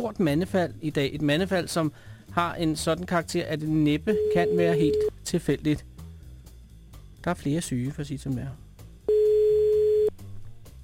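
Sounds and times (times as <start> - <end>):
speech: 0.0 - 5.9, 7.2 - 8.6
telephone tone while calling home: 4.1 - 5.1, 9.1 - 10.1.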